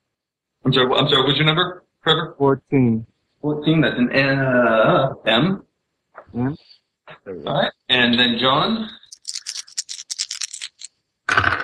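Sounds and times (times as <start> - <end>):
speech: 0.7 - 5.6, 6.3 - 9.0, 11.4 - 11.6
plastic dice rattling: 9.1 - 10.9
dice spilling and tumbling across a table: 9.1 - 11.6.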